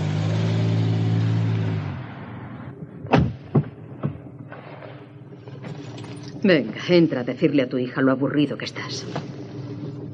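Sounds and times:
car reversing away from a house gate and driving off: 0.0 - 10.1
sharp bangs: 2.0 - 5.0
speech: 6.4 - 9.4.

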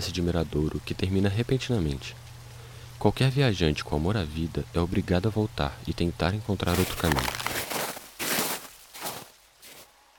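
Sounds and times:
speech: 0.0 - 2.2, 3.0 - 7.6
quick running footsteps scuffing across the ground: 6.7 - 10.0.

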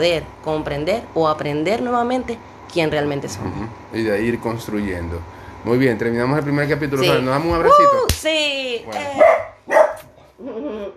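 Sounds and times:
speech: 0.0 - 9.8, 10.4 - 10.9
dog barking: 9.2 - 10.2.

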